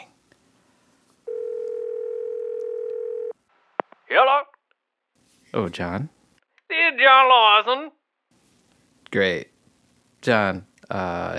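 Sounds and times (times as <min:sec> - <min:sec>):
telephone ringback tone: 0:01.2 - 0:03.4
speech: 0:04.1 - 0:04.5, 0:05.5 - 0:06.2, 0:07.0 - 0:08.0, 0:09.1 - 0:09.5, 0:10.2 - 0:11.3.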